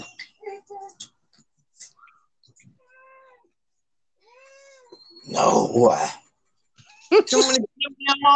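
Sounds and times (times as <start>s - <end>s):
cats meowing for food: 2.5s - 3.6s, 4.2s - 5.6s
speech: 5.3s - 6.2s, 7.2s - 8.3s.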